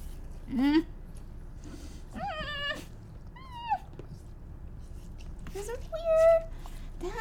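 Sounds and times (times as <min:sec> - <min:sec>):
low hum: 0:00.0 - 0:07.2
speech: 0:00.5 - 0:00.9
new puppy whimpering: 0:02.2 - 0:04.0.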